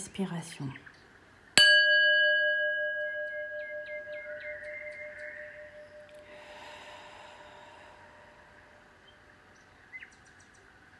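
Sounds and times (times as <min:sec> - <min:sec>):
speech: 0:00.2 - 0:00.9
meditation gong stroke ringing: 0:01.6 - 0:06.3.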